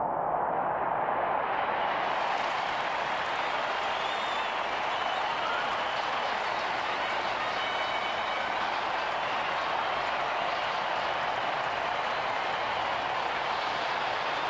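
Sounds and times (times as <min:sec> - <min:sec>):
sports arena crowd cheering: 0:00.1 - 0:14.4.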